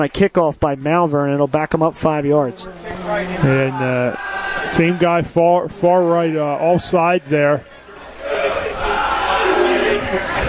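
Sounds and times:
speech: 0.0 - 7.8
football crowd cheering and shouting: 2.7 - 10.4.

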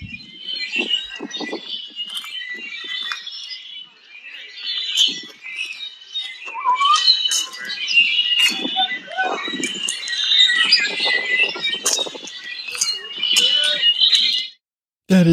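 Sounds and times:
dense chorus of wild birds chirping on a lakeside hiking trail: 0.0 - 14.5.

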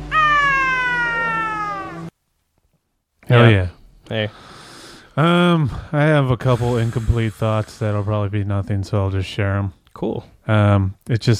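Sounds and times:
Tonkinese cat yowling with tail caught in closing window: 0.0 - 2.1
speech: 3.3 - 4.6, 5.2 - 11.3.

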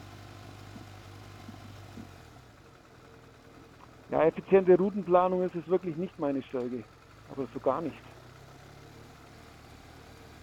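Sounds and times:
tractor engine running: 0.0 - 10.4
speech: 4.1 - 8.1.

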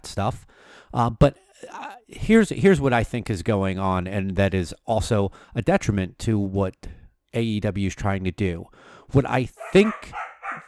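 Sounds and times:
speech: 0.1 - 10.3
dog barking: 9.6 - 10.6.

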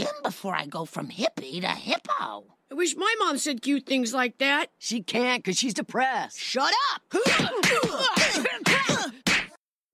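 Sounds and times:
speech: 0.2 - 9.2
exaggerated cartoon punches: 7.2 - 9.6.

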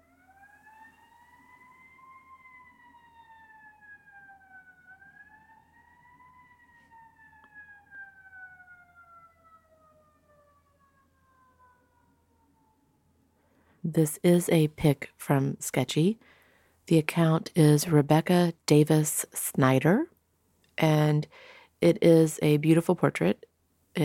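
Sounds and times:
wailing siren passing by outside: 0.0 - 13.9
speech: 13.8 - 16.3, 16.9 - 20.1, 20.8 - 24.0.

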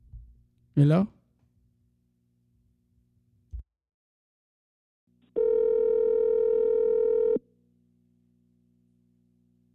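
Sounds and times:
speech: 0.8 - 1.2
buzzing telephone dial tone: 5.4 - 7.4.

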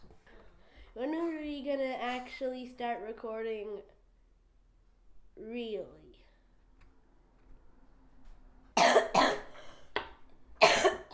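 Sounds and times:
speech: 1.0 - 4.0, 5.4 - 6.0
person coughing: 8.8 - 9.8, 10.6 - 11.1.

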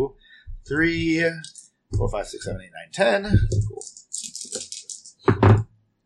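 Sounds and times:
speech: 0.0 - 4.1
dice tumbling across a table: 3.5 - 5.2.

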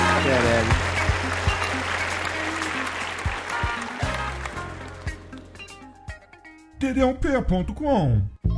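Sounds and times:
crowd clapping: 0.0 - 5.9
speech: 6.8 - 8.4.

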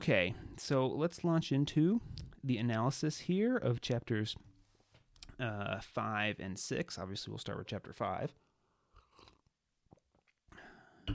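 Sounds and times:
speech: 0.0 - 4.5, 5.4 - 8.4
person sipping tea: 8.8 - 9.5.

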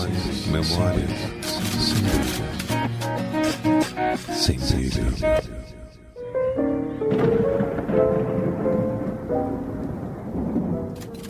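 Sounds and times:
speech: 0.0 - 5.7
thunder from a storm outside: 7.0 - 11.2
rain from a storm outside: 7.2 - 11.2.

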